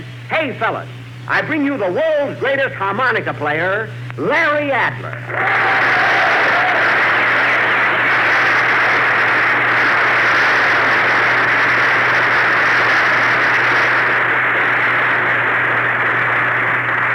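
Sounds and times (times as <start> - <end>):
hiss and hum of an old recording: 0.0 - 17.1
speech: 0.3 - 5.8
applause from a large audience: 5.3 - 17.1.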